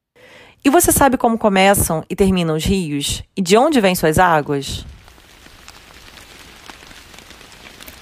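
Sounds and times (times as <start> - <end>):
speech: 0.6 - 5.0
steady rain pattering on a hard surface: 4.7 - 7.9.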